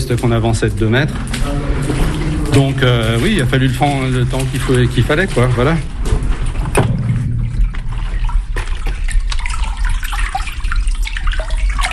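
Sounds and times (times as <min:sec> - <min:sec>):
water rushing through an irrigation pipe carrying water to farmland: 0:00.0 - 0:11.9
speech: 0:00.1 - 0:01.8, 0:02.6 - 0:05.9.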